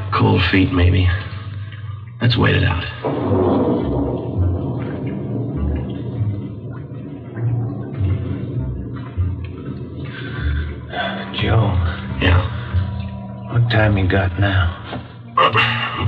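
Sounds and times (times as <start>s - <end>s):
rain starting to fall: 0.0s - 16.0s
speech: 0.2s - 1.3s, 2.2s - 4.5s, 13.7s - 15.8s
low rumbling thuds: 2.4s - 15.2s.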